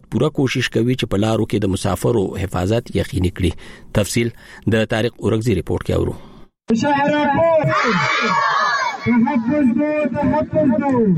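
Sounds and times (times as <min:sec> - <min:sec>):
speech: 0:00.1 - 0:11.1
crowd shouting at a protest: 0:07.2 - 0:11.1
children shouting slogans at a protest: 0:07.6 - 0:09.4.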